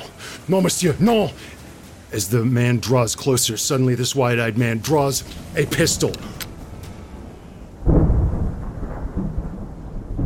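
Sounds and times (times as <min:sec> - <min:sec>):
steady rain: 0:00.0 - 0:10.2
speech: 0:00.5 - 0:06.5
deep roll of thunder: 0:05.2 - 0:10.2.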